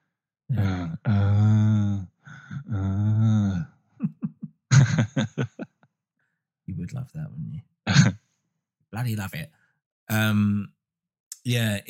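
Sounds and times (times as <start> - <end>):
heavy strange breathing opening a song: 0.5 - 3.7
short rhythmic panting gasps: 2.2 - 2.7
laughter: 4.0 - 5.7
speech: 9.0 - 10.8, 11.4 - 11.8.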